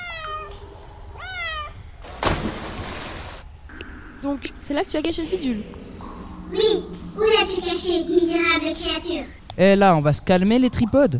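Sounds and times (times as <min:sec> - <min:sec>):
cat meowing: 0:00.0 - 0:01.8
dull thump: 0:02.0 - 0:03.1
speech: 0:04.2 - 0:05.9, 0:06.5 - 0:11.1.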